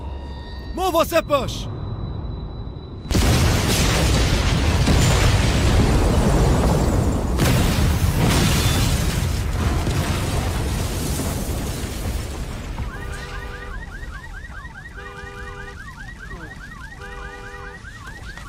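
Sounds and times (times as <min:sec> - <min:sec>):
speech: 0:00.8 - 0:01.7
powerful explosion: 0:02.9 - 0:13.0
explosion bursts and crackles: 0:03.1 - 0:18.4.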